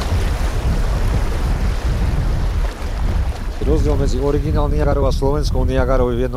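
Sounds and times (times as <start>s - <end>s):
rushing river water approaching rapids: 0.0s - 5.0s
man speaking: 3.6s - 6.3s.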